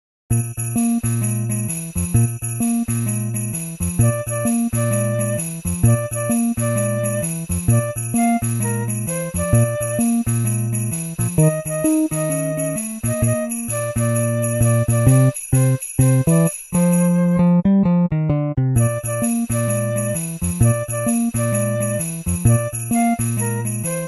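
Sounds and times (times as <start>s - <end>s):
jazz arrangement of a Christmas song: 0.8s - 24.0s.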